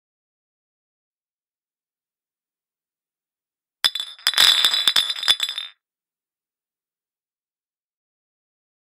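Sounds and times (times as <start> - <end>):
glasses clinking in a toast: 3.9 - 5.7.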